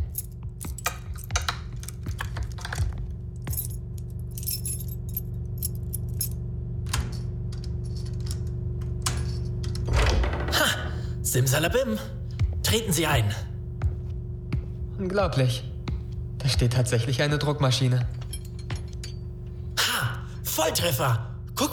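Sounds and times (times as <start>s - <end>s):
bunch of keys jangling: 0.0s - 9.9s, 18.1s - 20.3s
low steady hum: 0.0s - 21.7s
speech: 11.3s - 13.5s, 15.0s - 15.7s, 16.4s - 18.2s, 20.7s - 21.7s.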